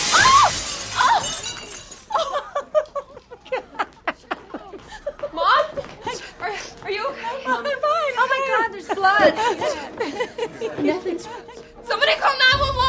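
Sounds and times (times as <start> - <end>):
glass table shattering as a woman falls through: 0.0 - 2.2
glass debris tinkling: 0.0 - 2.5
people chattering and laughing excitedly: 2.1 - 12.8.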